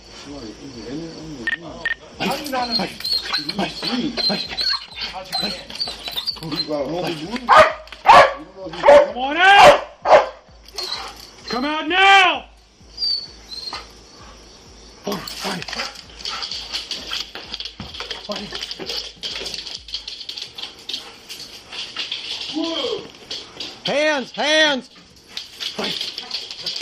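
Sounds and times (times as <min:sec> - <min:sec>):
speech: 0:00.3 - 0:05.8, 0:06.4 - 0:07.8, 0:08.6 - 0:09.8, 0:11.5 - 0:12.5, 0:18.3 - 0:19.0, 0:24.2 - 0:24.9
police dog barking at a suspect inside an apartment: 0:07.5 - 0:10.4
man shouting commands: 0:08.7 - 0:09.8, 0:11.5 - 0:12.5, 0:22.5 - 0:23.1.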